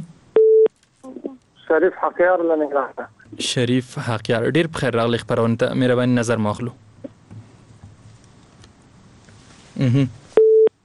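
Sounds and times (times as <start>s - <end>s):
faint hiss: 0.0s - 10.8s
telephone busy tone after a dropped call line: 0.4s - 0.7s, 10.4s - 10.7s
speech: 1.7s - 6.8s, 9.9s - 10.2s.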